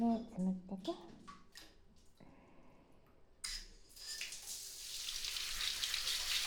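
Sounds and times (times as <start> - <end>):
speech: 0.0 - 1.4
water poured over hair to rinse it: 4.0 - 6.4.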